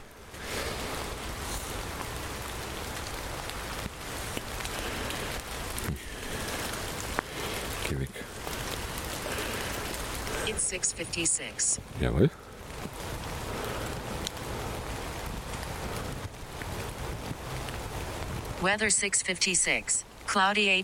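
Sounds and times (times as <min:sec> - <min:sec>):
rain falling: 0:00.0 - 0:20.8
speech: 0:10.7 - 0:12.4, 0:18.6 - 0:20.8.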